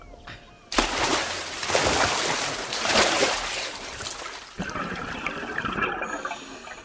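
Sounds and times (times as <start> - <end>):
loud splash of divers with oxygen tanks jumping into the sea: 0.7 - 4.6
churning rushing sea water: 0.8 - 5.2
bubbling and gurgling of divers sinking beneath the sea surface: 4.6 - 6.8.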